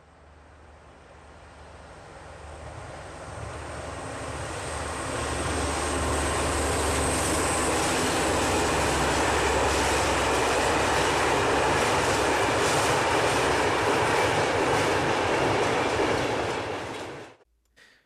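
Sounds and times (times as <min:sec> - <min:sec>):
high-speed Shinkansen bullet train passing: 0:00.1 - 0:17.4
rhythmic rail clatter of a bullet train: 0:05.1 - 0:17.4.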